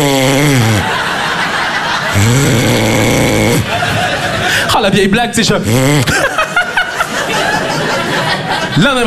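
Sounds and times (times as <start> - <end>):
person imitating loud snoring: 0.0 - 1.0, 2.1 - 3.7, 5.6 - 6.2
laughter: 0.6 - 9.0
speech: 4.8 - 6.3, 8.8 - 9.0.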